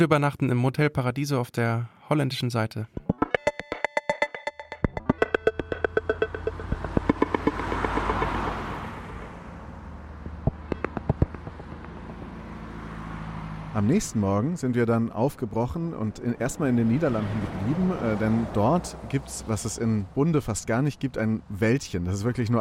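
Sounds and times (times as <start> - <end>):
speech: 0.0 - 3.1, 13.8 - 22.6
rapid clicking ticks: 3.0 - 8.3, 10.2 - 12.1
sharp clanks: 3.0 - 9.3, 10.2 - 12.2
bus engine drone pulling in to a bus stop: 4.5 - 22.6.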